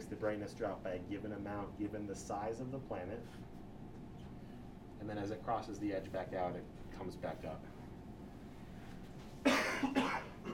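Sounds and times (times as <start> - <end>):
speech: 0.1 - 3.6, 5.0 - 7.8
cough from a tickle in the throat: 9.4 - 10.5.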